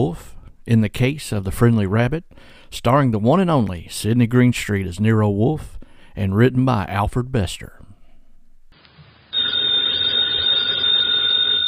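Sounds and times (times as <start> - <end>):
speech: 0.0 - 7.8
telephone bell ringing: 9.3 - 11.6.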